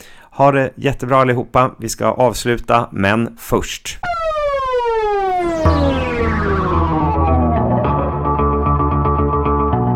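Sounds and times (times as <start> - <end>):
speech: 0.4 - 4.2
electronic podcast jingle with synth sweeps and buzzy chords: 4.0 - 9.8.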